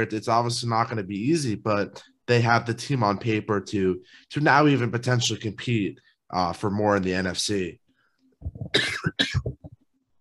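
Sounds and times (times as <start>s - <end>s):
speech: 0.0s - 7.8s, 8.4s - 9.5s
person coughing: 8.6s - 9.6s.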